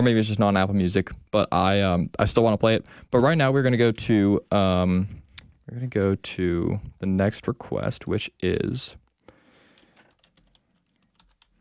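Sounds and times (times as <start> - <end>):
speech: 0.0 - 9.0
typing on a computer keyboard: 9.8 - 11.5.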